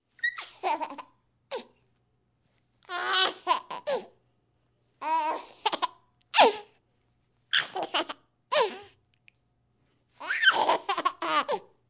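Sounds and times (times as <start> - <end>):
infant laughing and giggling: 0.2 - 1.7, 2.9 - 4.1, 5.0 - 6.7, 7.6 - 8.9, 10.2 - 11.7.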